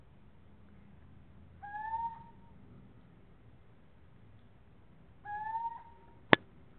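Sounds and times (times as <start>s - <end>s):
Athene noctua little owl hooting: 1.6s - 2.4s, 5.2s - 6.1s.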